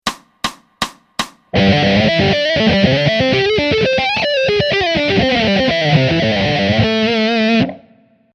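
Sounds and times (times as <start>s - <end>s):
fast A minor pentatonic phrase in fifths with slides: 1.6s - 7.7s.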